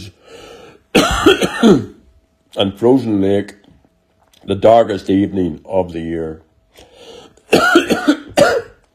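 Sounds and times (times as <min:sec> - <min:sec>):
harsh chesty coughs: 0:00.9 - 0:02.0, 0:07.4 - 0:08.8
speech: 0:01.2 - 0:03.6, 0:04.4 - 0:08.6.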